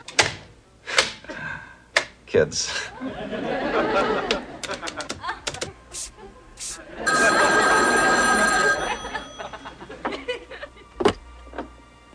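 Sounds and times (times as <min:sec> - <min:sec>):
speech: 0:02.3 - 0:05.0
laughter: 0:02.8 - 0:11.0
telephone bell ringing: 0:07.0 - 0:10.0.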